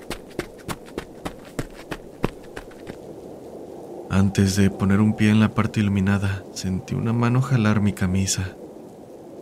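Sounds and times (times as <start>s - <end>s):
running footsteps of a person running toward an entrance gate: 0.0s - 3.1s
speech: 4.2s - 8.6s.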